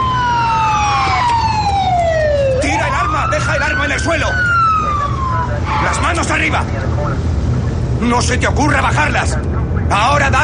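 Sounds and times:
police siren wailing: 0.0 - 6.8
road noise: 0.0 - 10.4
rumble of police car engines: 0.0 - 10.4
police cars skidding: 2.1 - 6.6
speech: 4.0 - 4.5, 6.1 - 7.4, 8.0 - 10.4.

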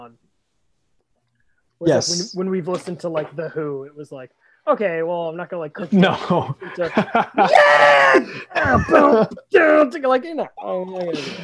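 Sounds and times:
speech: 0.0 - 0.3, 1.8 - 11.4
laughter: 5.9 - 9.5
person imitating a rock singer's scream: 7.4 - 9.0.

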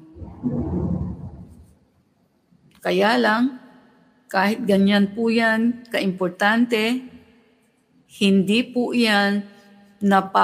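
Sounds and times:
loud deep low thunder rumbling: 0.0 - 1.8
speech: 0.4 - 1.0, 2.8 - 3.6, 4.3 - 7.1, 8.1 - 10.4.

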